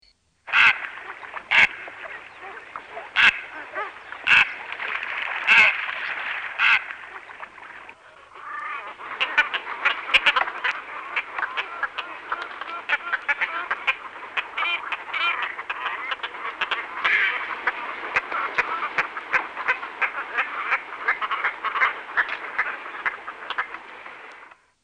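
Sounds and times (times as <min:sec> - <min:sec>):
squacco heron: 0:00.5 - 0:24.6.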